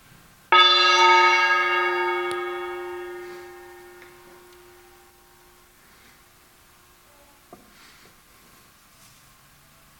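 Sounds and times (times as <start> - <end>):
gong strike ringing for meditation: 0.5 - 5.8.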